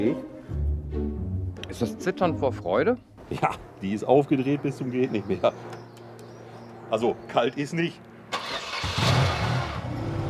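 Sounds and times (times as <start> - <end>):
speech: 0.0 - 0.3, 1.7 - 5.8, 6.9 - 8.1
motorcycle engine revving on a ride around Coesfeld: 8.3 - 10.2.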